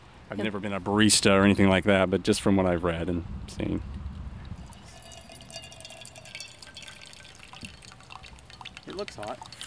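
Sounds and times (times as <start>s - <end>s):
speech: 0.3s - 4.0s, 9.0s - 9.6s
soft dripping and gurgling of coffee: 3.8s - 9.6s
steaming hot water poured in a circular motion over coffee grounds: 4.6s - 9.6s.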